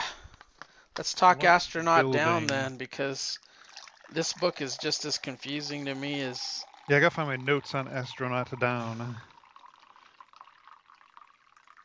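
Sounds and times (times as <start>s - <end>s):
speech: 1.0s - 3.5s, 4.1s - 9.3s
tea pouring into a cup: 3.0s - 11.8s.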